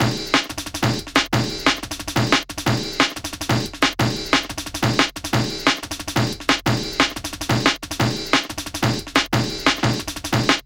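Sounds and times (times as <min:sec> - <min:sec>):
drum and bass beat: 0:00.0 - 0:10.6.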